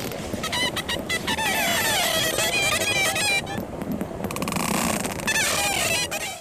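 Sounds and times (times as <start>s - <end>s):
dolphin whistles: 0.2s - 3.6s, 4.9s - 6.4s.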